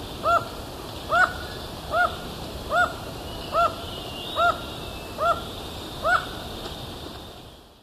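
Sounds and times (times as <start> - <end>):
black-mandibled toucan yelping in Ecuador: 0.2 - 0.5, 1.1 - 3.8, 5.2 - 6.3.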